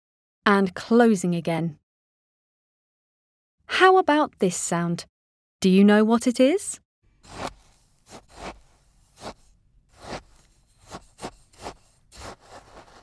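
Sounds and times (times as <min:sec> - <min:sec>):
speech: 0:00.5 - 0:01.8, 0:03.8 - 0:08.6
spade digging in playground sand: 0:07.2 - 0:13.0.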